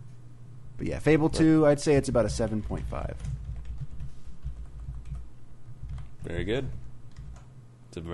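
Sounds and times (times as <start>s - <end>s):
speech: 0.8s - 3.4s, 6.2s - 6.8s, 7.9s - 8.1s
typing on a computer keyboard: 2.4s - 6.1s, 7.1s - 7.5s.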